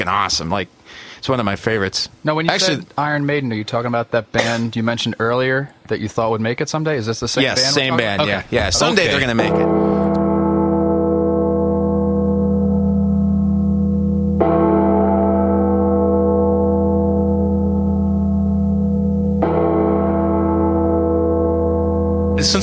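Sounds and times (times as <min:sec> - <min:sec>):
speech: 0:00.0 - 0:09.9
deep church bell tolling: 0:09.2 - 0:22.6.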